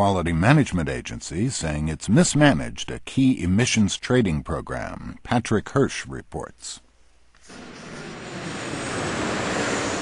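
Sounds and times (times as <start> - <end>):
speech: 0.0 - 6.8
airplane passing overhead: 7.5 - 9.9.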